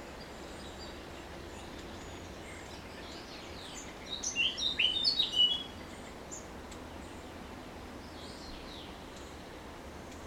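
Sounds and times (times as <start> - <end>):
faint steady hiss: 0.0 - 10.2
Eurasian blackcap Sylvia atricapilla calls: 2.0 - 6.4.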